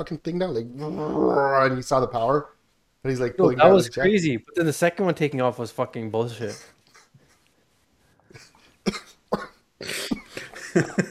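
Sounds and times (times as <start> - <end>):
speech: 0.0 - 6.8, 10.8 - 11.0
deep harsh chesty coughing fit: 8.3 - 11.0.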